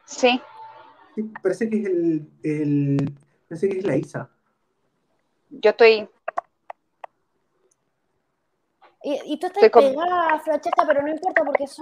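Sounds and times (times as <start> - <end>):
speech: 0.1 - 0.5, 1.2 - 4.4, 5.5 - 6.2, 9.0 - 11.8
keyboard typing clicks: 6.2 - 7.2.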